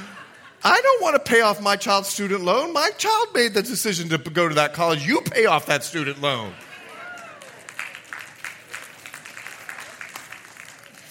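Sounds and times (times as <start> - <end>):
laughter: 0.0 - 1.0
speech: 0.6 - 6.6
congregation applauding: 6.3 - 11.1.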